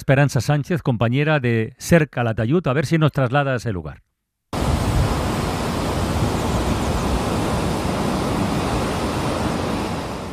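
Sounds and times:
speech: 0:00.0 - 0:04.1
56-metre river waterfall roaring: 0:04.6 - 0:10.3.

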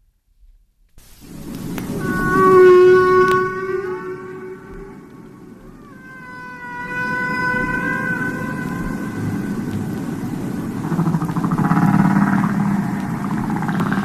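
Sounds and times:
deep underwater rumble: 0:01.2 - 0:14.0
humpback whale song moans: 0:01.8 - 0:14.0.

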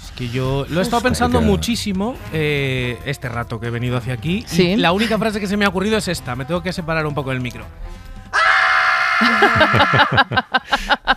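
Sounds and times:
speech: 0:00.2 - 0:08.1, 0:09.2 - 0:11.1
person screaming loudly: 0:08.3 - 0:10.2
laughter: 0:09.2 - 0:11.1.

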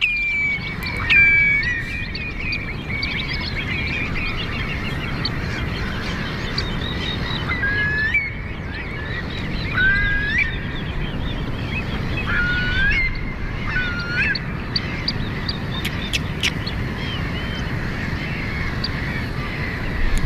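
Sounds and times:
distant surf roar: 0:00.0 - 0:20.2
shorebirds calling with whistling piping notes: 0:00.0 - 0:20.2.

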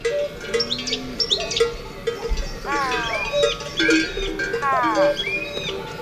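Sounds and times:
birds chirping: 0:00.0 - 0:06.0
cowbells clanking: 0:00.0 - 0:06.0
herdsman calling cows on mountain pasture: 0:02.6 - 0:03.5.

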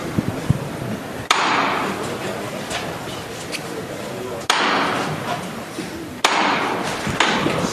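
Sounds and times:
crowd murmur: 0:00.0 - 0:07.7
faint voices: 0:00.0 - 0:07.7
procession float hammer knocks signalling the bearers: 0:04.5 - 0:05.4, 0:06.2 - 0:07.6.

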